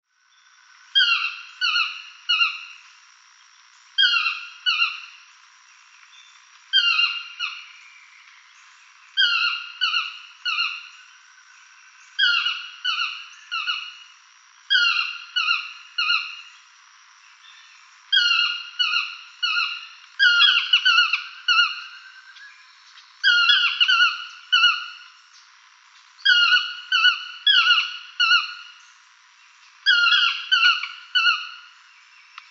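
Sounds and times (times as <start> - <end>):
toucan tocard calling: 1.0 - 2.7, 4.0 - 5.2, 6.7 - 7.7, 9.2 - 10.9, 12.2 - 14.0, 14.7 - 16.5, 18.1 - 22.2, 23.2 - 25.1, 26.2 - 28.8, 29.8 - 31.7.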